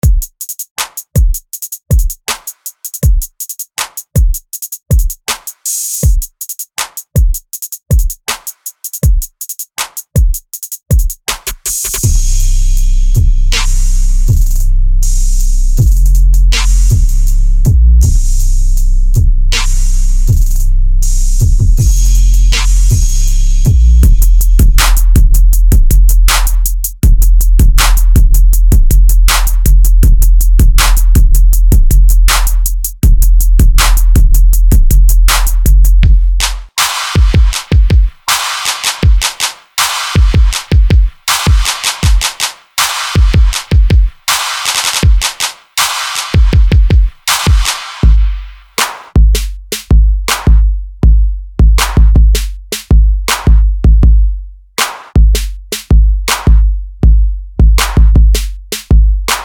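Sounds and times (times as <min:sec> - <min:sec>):
trap drums: 0:00.0 - 0:59.4.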